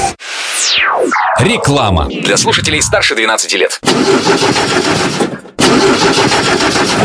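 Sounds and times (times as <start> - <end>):
speech: 0.7 - 7.0
truck engine cranking without starting due to a dead battery: 3.8 - 7.0.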